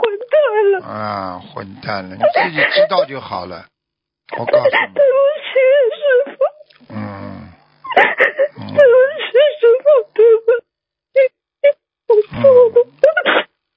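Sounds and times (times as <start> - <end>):
person sobbing: 0.0 - 1.4, 4.3 - 7.1, 8.0 - 10.6, 11.2 - 13.4
speech: 0.8 - 3.7, 4.3 - 5.4.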